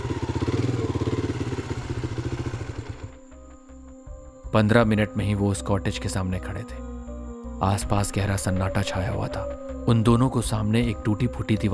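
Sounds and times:
motorcycle engine rumbling while two people ride along a road toward a cottage: 0.0s - 3.4s
speech: 4.6s - 6.8s, 7.6s - 11.7s.

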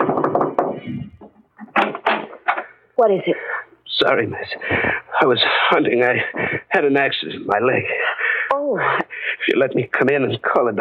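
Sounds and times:
knocking on a wooden door: 0.0s - 1.3s
speech: 3.0s - 8.1s, 8.7s - 10.7s.

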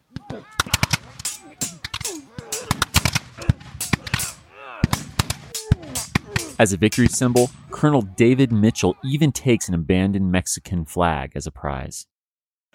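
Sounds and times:
shouting voices in a battle sound effect: 0.1s - 9.6s
dense irregular gunfire in a battle sound effect: 0.4s - 7.8s
heavier cannon blasts in a battle sound effect: 0.6s - 8.4s
speech: 6.6s - 12.1s.

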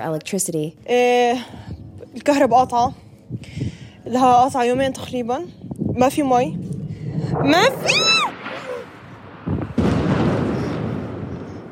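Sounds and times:
speech: 0.0s - 6.7s, 7.3s - 8.3s
low rumble: 0.7s - 11.7s
airstrike explosions in Gaza: 6.6s - 11.7s.

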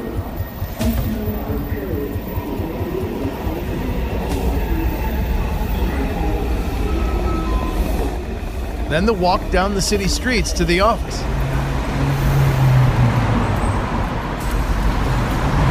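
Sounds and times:
murmuring voices inside subway car: 0.0s - 11.9s
subway train rumbling along the tracks in Washington, D.C.: 0.0s - 15.6s
speech: 8.9s - 11.4s.

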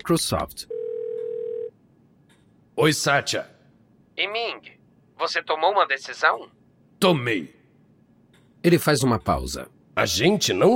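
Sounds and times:
faint noise: 0.0s - 10.7s
speech: 0.1s - 0.7s, 2.8s - 3.5s, 4.2s - 7.6s, 8.6s - 10.7s
telephone dial tone of an outgoing call: 0.7s - 1.7s.

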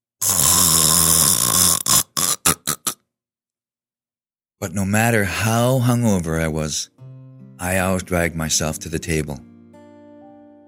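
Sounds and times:
loud raspy snoring: 0.2s - 3.0s
speech: 4.6s - 9.5s.

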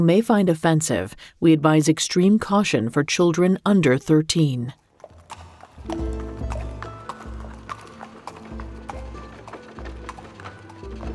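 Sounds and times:
speech: 0.0s - 4.8s, 5.9s - 6.2s
horse hooves clip-clopping at a walking pace: 4.8s - 11.1s.

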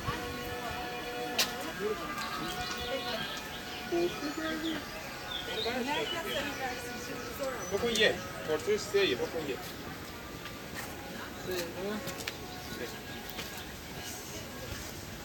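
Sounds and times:
amplified kemençe droning bowed notes: 0.0s - 7.8s
footsteps on a small narrow road: 0.0s - 15.2s
voices talking at a monastery: 0.0s - 15.2s
birdsongs: 2.2s - 8.8s.

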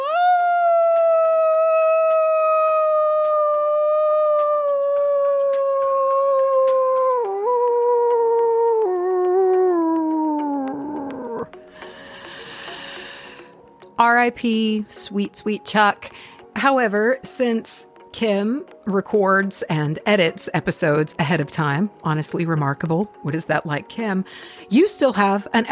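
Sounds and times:
person howling like a dog: 0.0s - 11.5s
speech: 14.2s - 25.7s.

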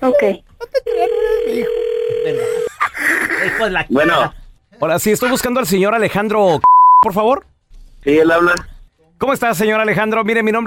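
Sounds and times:
speech: 0.1s - 0.8s, 3.6s - 10.6s
telephone ringback tone after a number is dialed: 0.9s - 2.7s.

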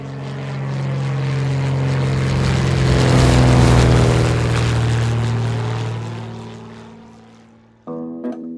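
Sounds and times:
propeller airplane droning past overhead: 0.0s - 7.9s.

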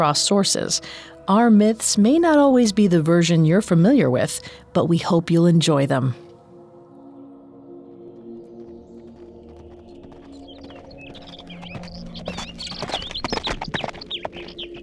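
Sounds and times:
speech: 0.0s - 6.2s
songbirds chirping and tweeting overhead: 0.0s - 14.8s
ridden horse's hooves clopping through forest foliage: 8.1s - 14.8s.

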